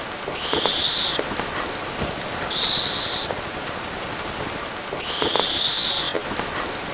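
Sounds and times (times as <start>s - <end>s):
sugar glider long and slow hissing: 0.2s - 3.6s, 4.9s - 6.8s.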